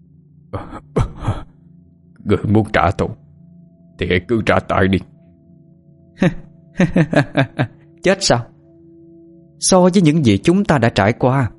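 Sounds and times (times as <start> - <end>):
man coughing and choking after falling to the ground: 0.6 - 1.5
speech: 2.3 - 3.2, 4.0 - 5.1, 6.2 - 8.5, 9.6 - 11.5
laughter: 6.2 - 7.7.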